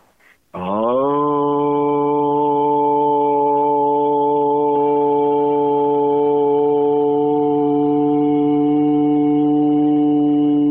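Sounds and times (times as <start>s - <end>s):
breath: 0.0s - 0.5s
long vocal tone chanting the Aramaic prayer word Aun: 0.5s - 10.6s.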